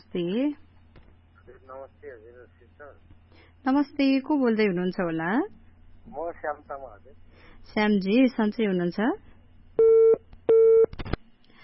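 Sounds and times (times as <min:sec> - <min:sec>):
speech: 0:00.1 - 0:00.6, 0:01.5 - 0:10.2
busy signal on a telephone line after a call was cut off: 0:09.8 - 0:10.9
telephone line clicks and line noise: 0:10.9 - 0:11.3.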